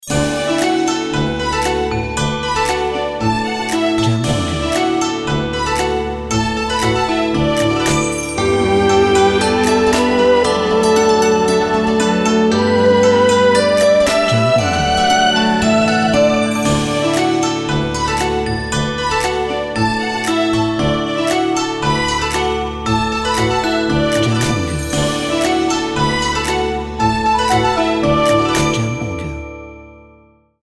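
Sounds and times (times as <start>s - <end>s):
Chinese dragon dance music: 0.0s - 29.4s.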